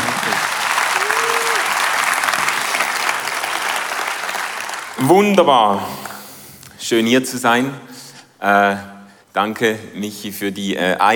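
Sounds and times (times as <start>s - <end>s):
audience applause: 0.0s - 5.1s
speech: 5.0s - 6.0s, 6.8s - 11.1s.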